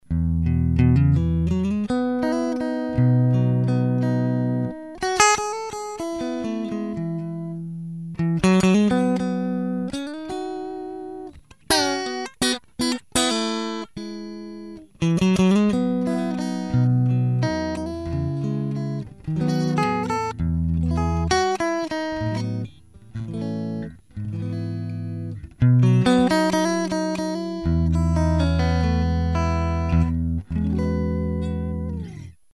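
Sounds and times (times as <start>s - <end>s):
clean preamp guitar tone: 0.1s - 32.5s.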